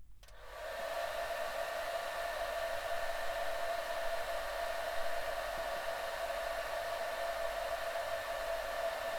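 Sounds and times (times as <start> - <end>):
hair dryer blowing: 0.4 - 9.1.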